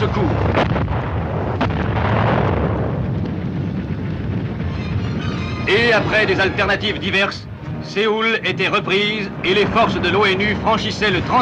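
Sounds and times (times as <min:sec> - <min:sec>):
speech: 0:00.0 - 0:01.0, 0:05.7 - 0:11.4
artillery fire in war: 0:00.0 - 0:06.5.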